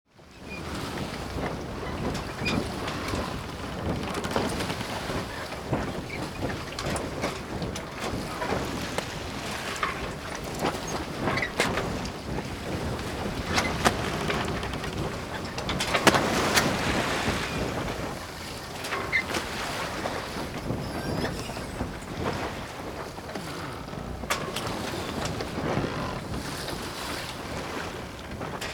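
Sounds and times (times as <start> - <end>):
sailboat: 0.1 - 28.7.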